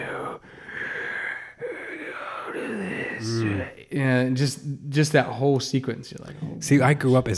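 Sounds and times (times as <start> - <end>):
voice imitating a wolf's heavy breathing: 0.0 - 3.9
speech: 3.2 - 7.3.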